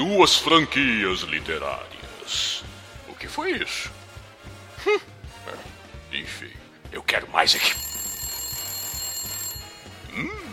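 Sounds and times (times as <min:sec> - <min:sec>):
speech: 0:00.0 - 0:02.8, 0:03.4 - 0:04.0, 0:04.8 - 0:05.7, 0:06.3 - 0:07.9
telephone ringing with an electronic trill: 0:07.5 - 0:10.5.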